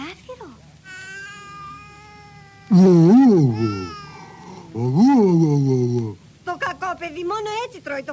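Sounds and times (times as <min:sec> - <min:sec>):
person imitating a wolf growl to coax a baby into eating: 0:02.7 - 0:04.0, 0:04.6 - 0:06.2
speech: 0:02.7 - 0:04.0, 0:04.8 - 0:08.1.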